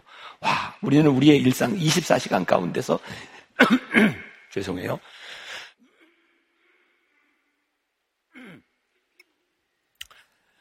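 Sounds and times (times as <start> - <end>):
speech: 0.4 - 5.4
person coughing in short bursts: 3.6 - 4.4, 8.3 - 8.7.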